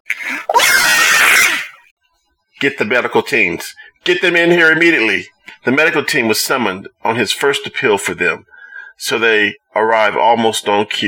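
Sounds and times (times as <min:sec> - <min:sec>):
woman screaming: 0:00.2 - 0:01.8
speech: 0:02.6 - 0:11.0.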